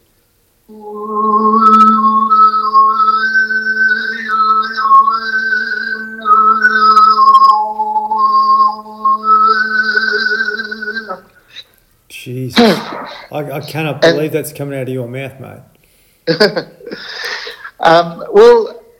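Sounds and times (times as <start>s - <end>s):
speech: 0.7s - 1.1s, 12.6s - 15.7s, 16.3s - 16.7s, 17.8s - 18.7s
harmonic overtone singing with low drone and whistle-like overtone melody: 0.7s - 11.4s
laughter: 16.3s - 17.6s.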